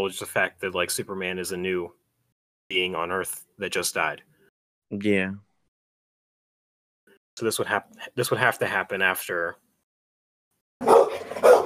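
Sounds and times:
speech: 0.0s - 2.0s, 2.7s - 4.3s, 4.9s - 5.4s, 7.4s - 9.6s
dog barking: 10.8s - 11.6s.

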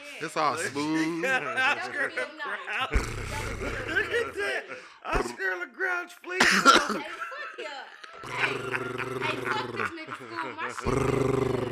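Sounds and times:
laughter: 0.0s - 5.4s, 6.3s - 11.2s
speech: 0.2s - 11.7s
person growling: 2.9s - 4.3s, 8.2s - 10.0s, 10.8s - 11.7s.

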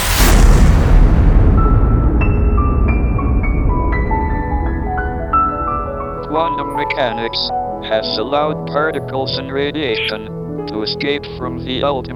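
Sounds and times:
huge explosion with long low rumble: 0.0s - 7.0s
speech: 6.4s - 12.1s.

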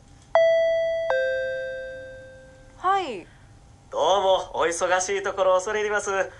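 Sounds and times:
two-tone ding-dong from an intercom doorbell: 0.4s - 2.7s
speech: 4.7s - 6.3s.

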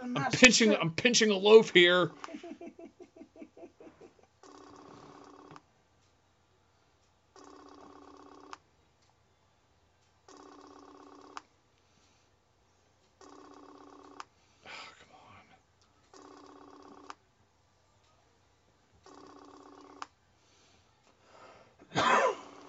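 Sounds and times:
speech: 0.2s - 2.4s
laughter: 2.1s - 4.3s
telephone call ringing unanswered: 4.4s - 5.6s, 7.3s - 8.6s, 10.3s - 11.4s, 13.2s - 14.2s, 16.1s - 17.2s, 19.0s - 20.1s.

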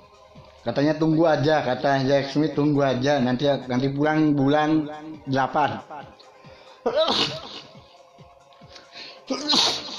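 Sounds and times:
speech: 0.6s - 6.2s, 6.8s - 7.5s, 9.3s - 9.7s
person breathing: 6.2s - 6.9s, 8.6s - 9.3s
person sneezing: 6.9s - 7.7s, 9.3s - 9.9s.

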